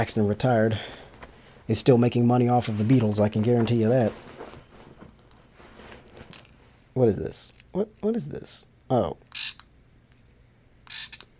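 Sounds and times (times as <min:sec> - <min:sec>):
speech: 0:00.0 - 0:01.0, 0:01.7 - 0:04.3, 0:07.0 - 0:09.6
keychain toy frog giving electronic ribbits: 0:10.8 - 0:11.3.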